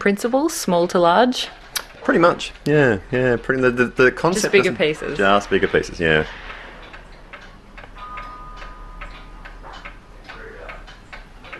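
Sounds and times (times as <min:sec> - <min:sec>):
speech: 0:00.0 - 0:06.4
several clocks ticking in a clock workshop: 0:00.0 - 0:11.5
low hum: 0:02.6 - 0:11.5.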